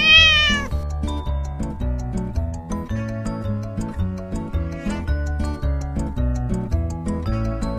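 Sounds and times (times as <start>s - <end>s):
cat meowing rising in pitch: 0.0s - 0.7s
bouncy musical backing with a steady ticking beat: 0.0s - 7.7s.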